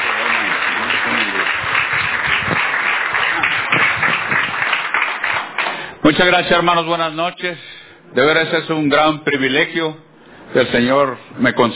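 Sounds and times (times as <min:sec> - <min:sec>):
audience clapping at a church anniversary service: 0:00.0 - 0:06.0
speech: 0:06.1 - 0:11.7.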